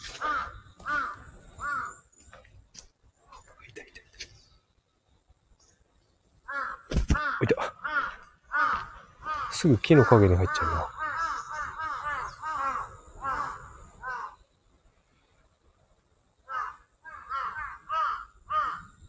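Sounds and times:
crows cawing: 0.0 - 2.0, 6.4 - 14.4, 16.4 - 19.0
quieter outdoor rustling: 0.0 - 19.0
speech: 9.6 - 11.0.

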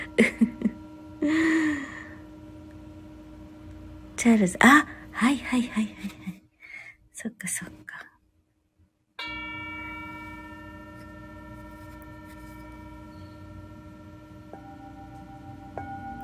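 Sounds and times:
singing bowl ringing: 0.0 - 5.9, 9.2 - 16.2
speech: 4.2 - 6.4, 7.2 - 8.1.

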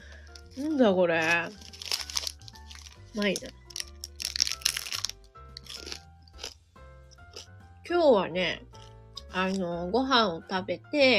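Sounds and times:
speech: 0.6 - 1.7, 3.1 - 3.6, 7.9 - 8.7, 9.3 - 11.1
teeth biting into a hard crusty French baguette: 1.3 - 7.6, 8.7 - 9.6.

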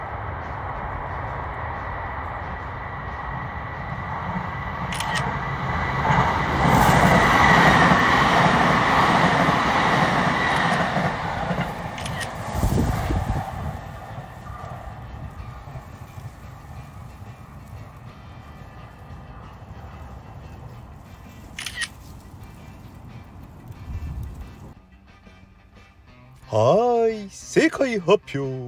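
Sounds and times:
train rumbling past on railway tracks: 0.0 - 28.6
speech: 28.0 - 28.6.

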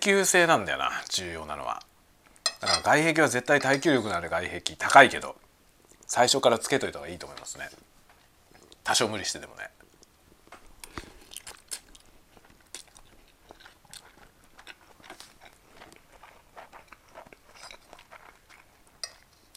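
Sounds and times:
speech: 0.0 - 1.9, 2.6 - 5.4, 6.1 - 8.0, 8.8 - 9.8
faint clinks of utensils: 2.4 - 2.9
crisp crunching and chewing of food: 10.8 - 19.5.

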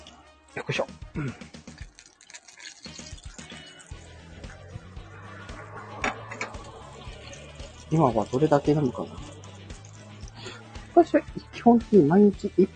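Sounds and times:
speech: 0.6 - 1.6, 7.9 - 9.3, 11.0 - 12.7
beef sizzling in a frying pan: 1.6 - 4.9, 6.1 - 11.0.

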